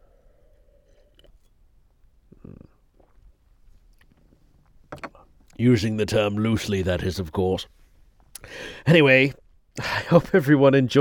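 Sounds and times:
person sipping wine: 0:00.1 - 0:01.6, 0:02.2 - 0:04.2
speech: 0:05.6 - 0:07.8, 0:08.5 - 0:10.9.

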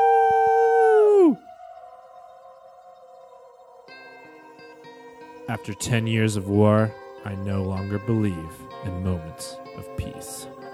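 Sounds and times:
video game howler pod creature howling: 0:00.0 - 0:06.0
speech: 0:05.5 - 0:10.7.

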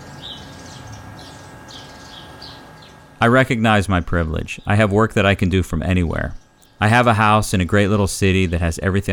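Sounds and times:
small backyard birds chirping outdoors: 0:00.0 - 0:09.1
steady low hum: 0:00.0 - 0:09.1
speech: 0:03.2 - 0:09.1.

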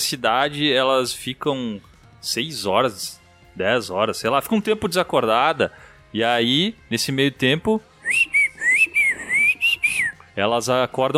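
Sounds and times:
speech: 0:00.1 - 0:07.9, 0:10.4 - 0:11.1
person whistling short bright bending notes censoring a swear word: 0:08.0 - 0:10.3.

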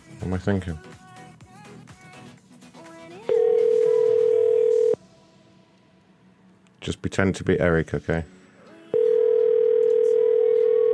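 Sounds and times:
speech: 0:00.3 - 0:00.9, 0:06.8 - 0:08.4
telephone dial tone while placing a call to a cell phone: 0:03.3 - 0:05.0, 0:09.0 - 0:10.9.

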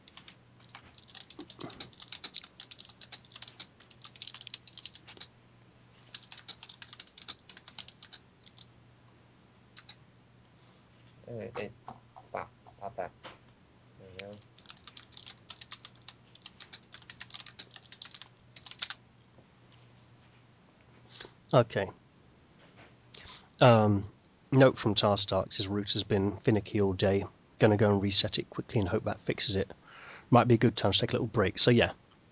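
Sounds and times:
typing on a computer keyboard: 0:00.0 - 0:05.3, 0:06.1 - 0:08.7, 0:09.8 - 0:10.0, 0:14.2 - 0:19.0
speech: 0:11.4 - 0:11.8, 0:21.5 - 0:22.0, 0:23.6 - 0:32.0.

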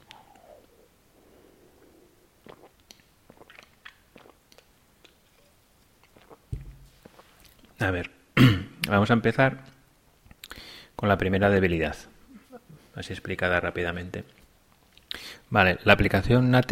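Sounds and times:
soft wet mouth clicks and swallowing while sipping a drink: 0:00.0 - 0:07.8
speech: 0:07.8 - 0:08.2, 0:08.9 - 0:09.7, 0:11.0 - 0:12.1, 0:13.0 - 0:14.4, 0:15.5 - 0:16.7.

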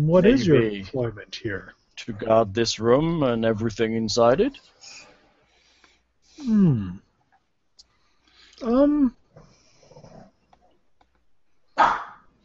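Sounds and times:
speech: 0:00.0 - 0:05.0, 0:06.4 - 0:07.0, 0:08.6 - 0:09.2
dog barking: 0:11.8 - 0:12.3.

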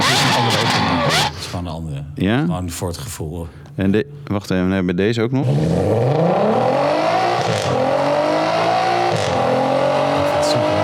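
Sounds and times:
Skoda VR6 car engine accelerating hard: 0:00.0 - 0:01.5, 0:05.4 - 0:10.8
speech: 0:01.8 - 0:06.7.

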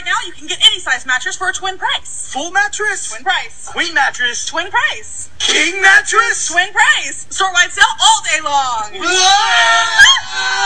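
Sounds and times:
speech: 0:00.3 - 0:10.6
several voices yelling in a mattress store advertisement: 0:09.0 - 0:10.6.

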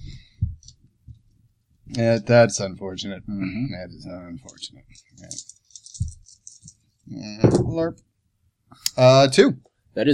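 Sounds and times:
speech: 0:01.9 - 0:05.6, 0:07.1 - 0:08.1, 0:08.7 - 0:10.1
dice rattling across a hard surface for a rapport roll in a game: 0:05.2 - 0:06.8.

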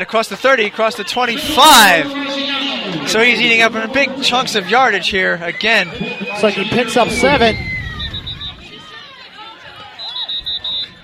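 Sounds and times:
speech: 0:00.0 - 0:07.7
stadium crowd murmuring: 0:00.5 - 0:11.0
referee whistles blowing on football field: 0:01.4 - 0:08.7, 0:10.0 - 0:11.0.

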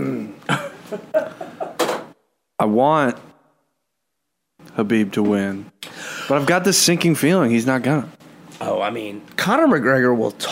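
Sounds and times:
man clearing his throat: 0:00.0 - 0:00.9
speech: 0:00.5 - 0:01.3, 0:02.6 - 0:03.3, 0:04.8 - 0:05.7, 0:06.3 - 0:10.5.

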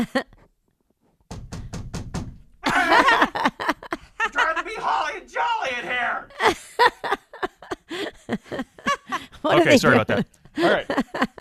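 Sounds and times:
speech: 0:00.0 - 0:00.3, 0:04.6 - 0:07.2, 0:09.4 - 0:11.3
bangs on a wall from the next room: 0:01.3 - 0:02.6
laughter: 0:02.6 - 0:11.3.

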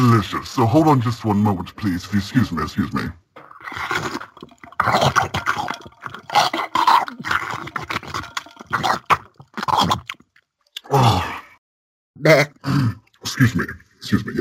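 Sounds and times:
speech: 0:00.0 - 0:04.0, 0:13.4 - 0:14.3
slurping and gulping from a drink can: 0:03.4 - 0:10.9.

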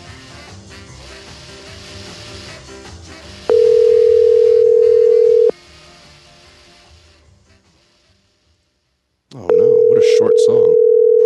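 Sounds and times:
telephone dial tone while calling back: 0:03.5 - 0:05.5, 0:09.5 - 0:11.2.

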